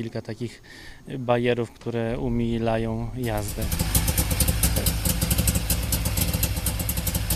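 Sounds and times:
speech: 0.0 - 4.0, 4.8 - 5.1
modern eco-friendly 100-horsepower car engine running steadily: 3.2 - 7.3.

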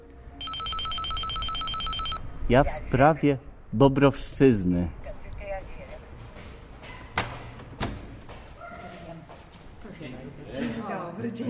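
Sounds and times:
telephone ringing with electronic warble: 0.4 - 2.2
speech: 2.5 - 5.0.

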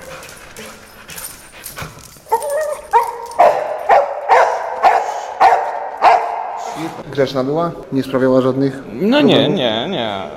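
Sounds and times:
dog whining and yelping: 0.0 - 5.2
speech: 7.2 - 10.3.

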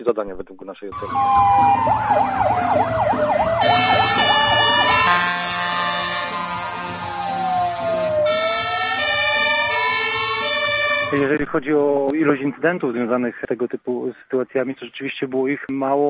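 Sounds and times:
speech: 0.0 - 4.4, 11.1 - 16.0
fire engine siren wailing: 0.9 - 11.3.

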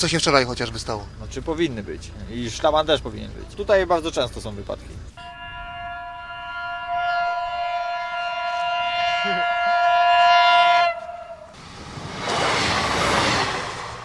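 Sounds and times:
speech: 0.0 - 5.4
train horn blast at a level crossing: 5.2 - 11.8
train rushing past a level crossing at speed: 5.3 - 14.0.

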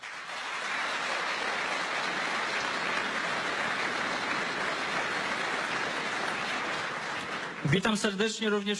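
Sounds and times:
large crowd applauding: 0.0 - 8.2
speech: 7.6 - 8.7.

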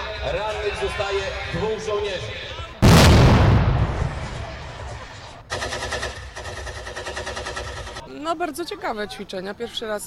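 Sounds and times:
speech: 0.2 - 2.6, 8.2 - 10.0
grenade explosion during a military exercise: 2.8 - 5.4
rapid gunfire bursts during a military exercise: 2.8 - 8.0.

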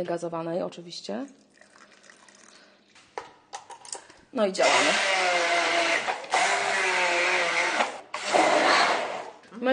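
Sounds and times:
speech: 0.0 - 1.4, 4.4 - 5.6, 9.6 - 9.7
still water poured into a blender jug holding mango pieces: 1.3 - 3.0
blender whirring while blending mango smoothie: 4.6 - 9.4.

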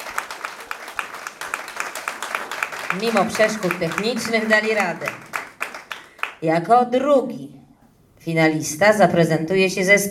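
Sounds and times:
applause for a finalist band at a music competition final: 0.0 - 6.4
speech: 2.9 - 5.3, 6.4 - 7.6, 8.2 - 10.0.

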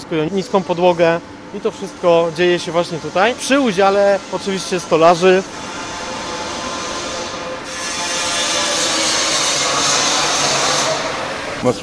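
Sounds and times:
speech: 0.1 - 5.7, 11.6 - 11.8
power tool whining in a tram repair workshop: 2.5 - 11.6.

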